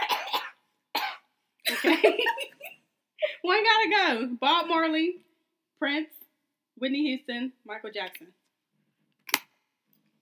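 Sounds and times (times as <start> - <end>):
person coughing: 0.0 - 1.9
speech: 1.8 - 2.6, 3.5 - 6.2, 6.8 - 8.4.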